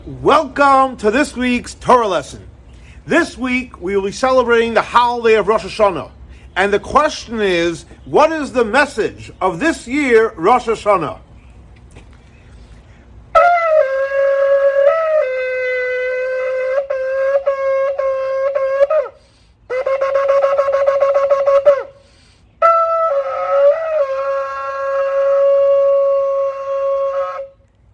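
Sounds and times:
speech: 0:00.1 - 0:02.5, 0:03.1 - 0:11.2
ram's-horn shofar blown for Rosh Hashanah: 0:13.3 - 0:27.6.

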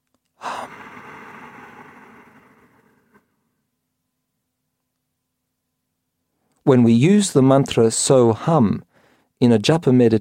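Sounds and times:
slow deep breath in a meditation demonstration: 0:00.4 - 0:03.7, 0:08.9 - 0:09.4
speech: 0:06.7 - 0:10.2.

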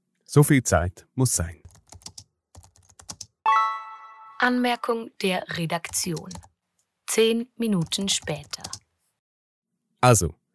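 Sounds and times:
speech: 0:00.3 - 0:01.6, 0:04.4 - 0:06.5, 0:07.2 - 0:08.8, 0:10.0 - 0:10.4
typing on a computer keyboard: 0:01.6 - 0:03.4, 0:05.8 - 0:06.6, 0:07.8 - 0:08.9.

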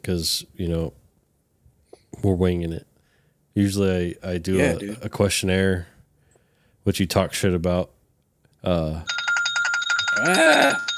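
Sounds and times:
speech: 0:00.0 - 0:01.0, 0:02.2 - 0:02.9, 0:03.6 - 0:05.9, 0:06.8 - 0:08.0, 0:08.6 - 0:09.2, 0:10.2 - 0:10.9
telephone bell ringing: 0:09.1 - 0:10.9.

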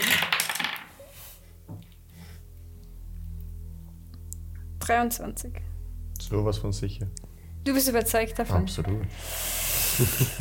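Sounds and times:
dice clattering and tumbling across a hard surface: 0:00.0 - 0:01.0
low steady hum: 0:01.1 - 0:10.3
speech: 0:04.9 - 0:05.7, 0:06.3 - 0:10.3.

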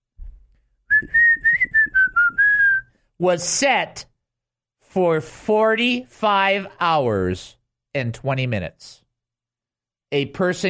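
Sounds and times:
continuous human whistling: 0:00.9 - 0:03.0
speech: 0:01.0 - 0:01.2, 0:03.2 - 0:04.1, 0:04.9 - 0:09.0, 0:10.1 - 0:10.6.

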